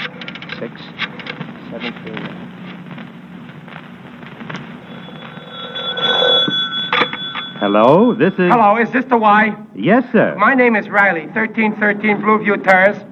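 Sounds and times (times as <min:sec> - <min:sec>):
speech: 0:01.7 - 0:02.6, 0:07.6 - 0:13.1
rising tonal telephone ring: 0:04.3 - 0:08.8.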